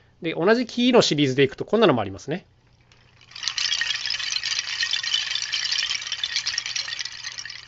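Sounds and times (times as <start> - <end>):
speech: 0.2 - 2.5
hanging wind chime of wooden branches clattering: 2.8 - 7.6.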